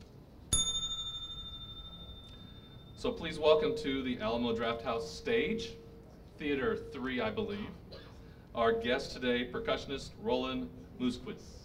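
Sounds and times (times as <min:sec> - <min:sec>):
desk bell ding signalling time is up: 0:00.5 - 0:04.3
speech: 0:03.0 - 0:05.8, 0:06.4 - 0:07.8, 0:08.6 - 0:11.6.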